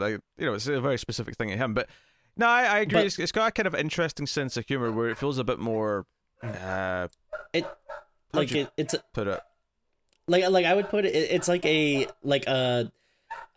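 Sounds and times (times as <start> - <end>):
speech: 0.0 - 9.5, 10.3 - 13.5
excited dogs barking, yipping and whining: 4.8 - 5.9, 7.3 - 9.5, 10.6 - 12.3, 13.2 - 13.5.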